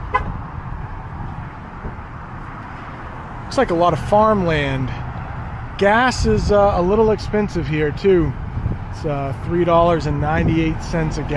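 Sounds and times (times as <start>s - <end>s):
car horn chirp from remote locking: 0.0s - 0.4s
low outdoor rumble of traffic at a rest stop in New York State: 0.0s - 11.3s
speech: 3.5s - 5.0s, 5.8s - 11.3s.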